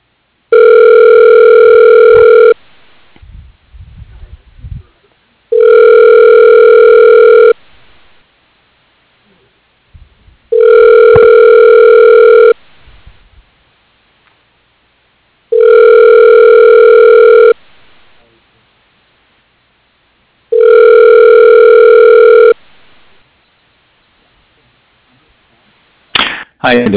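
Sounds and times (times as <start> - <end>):
telephone ringback tones on the line: 0.5 - 2.6, 5.5 - 7.6, 10.5 - 12.6, 15.5 - 17.6, 20.5 - 22.6.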